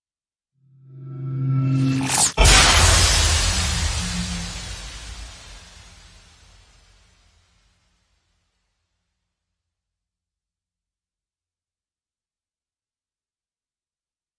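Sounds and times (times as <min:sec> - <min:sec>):
abstract explosion impact: 0:01.8 - 0:07.6.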